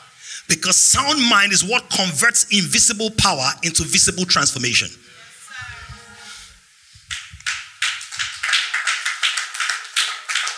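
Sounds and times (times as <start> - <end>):
speech: 0.5 - 5.2
audience clapping during a church sermon: 7.0 - 10.5.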